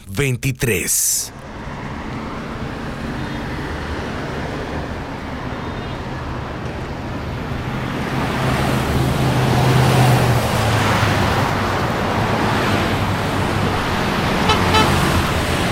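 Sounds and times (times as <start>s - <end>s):
road noise: 0.0s - 15.6s
speech: 0.1s - 1.5s
car approaching: 1.3s - 15.6s
car horn blast: 14.4s - 15.3s.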